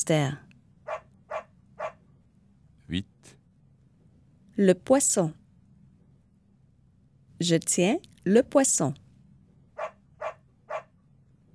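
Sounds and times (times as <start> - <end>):
speech: 0.0 - 0.4, 2.9 - 3.1, 4.6 - 5.4, 7.4 - 9.0
dog barking: 0.9 - 2.0, 9.8 - 11.0.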